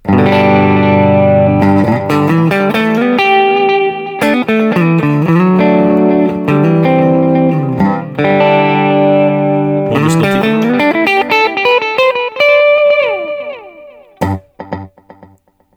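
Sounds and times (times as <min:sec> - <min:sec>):
electric guitar through two delay effects in series: 0:00.0 - 0:15.6.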